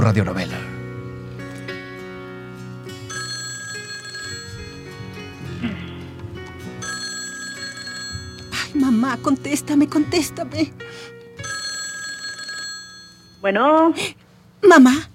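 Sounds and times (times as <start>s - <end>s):
speech: 0.0s - 0.7s, 9.1s - 11.1s, 13.4s - 15.1s
telephone ringing: 3.1s - 5.6s, 6.8s - 9.2s, 11.4s - 13.7s.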